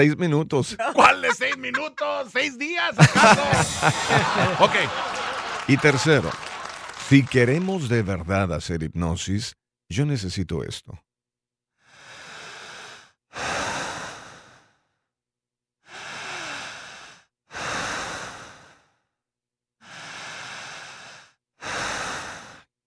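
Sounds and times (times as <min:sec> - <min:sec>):
speech: 0:00.0 - 0:06.5, 0:07.1 - 0:11.0
laughter: 0:00.7 - 0:08.3
slow, deep breathing: 0:11.8 - 0:15.0, 0:15.8 - 0:19.1, 0:19.8 - 0:22.7.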